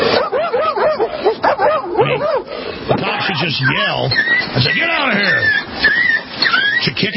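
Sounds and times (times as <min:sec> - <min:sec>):
fat Labrador service dog barking: 0:00.0 - 0:02.5
speech: 0:03.4 - 0:05.9, 0:06.9 - 0:07.1.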